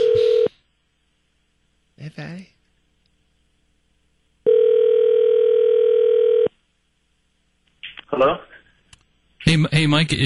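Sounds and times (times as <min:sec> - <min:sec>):
ringback tone of an outgoing phone call: 0:00.0 - 0:00.5, 0:04.4 - 0:06.5
speech: 0:02.2 - 0:02.6, 0:09.5 - 0:10.2.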